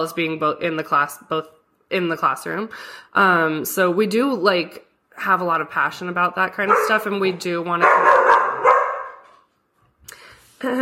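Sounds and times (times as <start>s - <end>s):
speech: 0.0s - 8.2s, 10.6s - 10.8s
dog barking: 6.6s - 7.1s, 7.8s - 9.4s.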